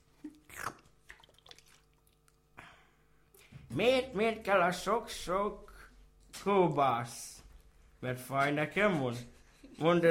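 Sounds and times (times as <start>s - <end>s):
person gulping a drink: 0.0s - 3.1s
person sipping a drink: 0.1s - 2.8s
person exhaling: 2.6s - 3.5s
speech: 3.7s - 5.7s, 6.4s - 7.3s, 8.0s - 10.0s.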